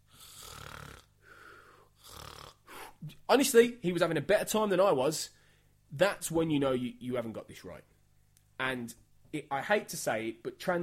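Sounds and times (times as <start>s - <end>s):
person snoring: 0.0s - 3.1s
speech: 3.0s - 7.9s, 8.6s - 10.8s.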